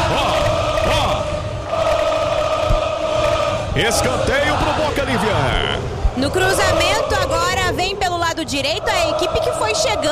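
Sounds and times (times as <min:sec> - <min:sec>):
large stadium crowd of football supporters cheering and chanting: 0:00.0 - 0:10.1
speech: 0:03.8 - 0:10.1.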